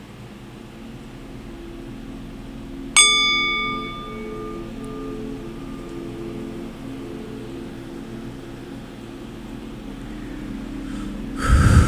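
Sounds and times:
soft rumble: 0:00.1 - 0:11.8
sound bowl struck and ringing: 0:00.3 - 0:11.8.

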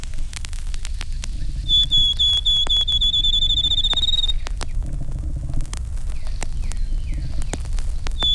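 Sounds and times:
low rumble: 0:00.0 - 0:08.3
male Field Sparrow whistled song: 0:00.8 - 0:04.6, 0:06.2 - 0:07.6, 0:08.2 - 0:08.3.

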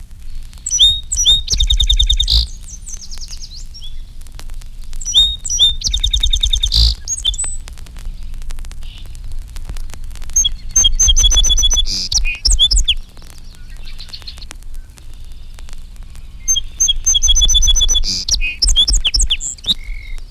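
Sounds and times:
faint low hum: 0:00.0 - 0:20.2
song sparrow singing: 0:00.6 - 0:04.0, 0:05.0 - 0:07.6, 0:10.4 - 0:14.4, 0:16.2 - 0:20.2.

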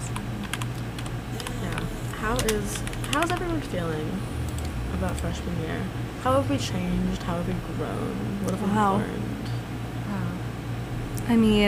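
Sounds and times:
steady low hum: 0:00.0 - 0:11.6
typing on a computer keyboard: 0:00.4 - 0:03.5
speech: 0:02.3 - 0:09.3, 0:11.3 - 0:11.6.

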